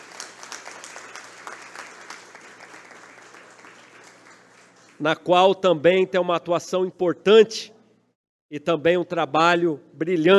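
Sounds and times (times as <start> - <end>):
audience applauding: 0.0 - 5.0
speech: 5.0 - 7.8, 8.5 - 10.3.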